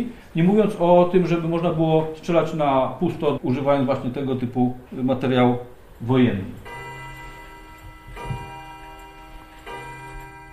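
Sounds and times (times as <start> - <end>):
speech: 0.0 - 6.8
clock ticking in a still room: 6.6 - 10.5.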